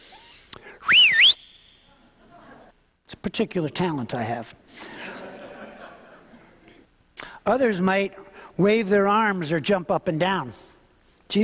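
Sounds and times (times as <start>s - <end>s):
loud piercing coaching whistle blown with the lips: 0.0s - 1.9s
laughter: 1.9s - 2.8s, 4.8s - 6.8s
speech: 3.2s - 5.0s, 7.4s - 10.7s, 11.3s - 11.4s.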